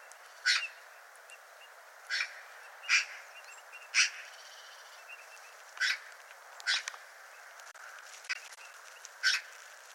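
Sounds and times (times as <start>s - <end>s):
Eurasian magpie Pica pica loud grating chack calls: 0.4s - 0.8s, 2.1s - 3.2s, 3.9s - 4.3s, 5.8s - 6.9s, 9.2s - 9.5s.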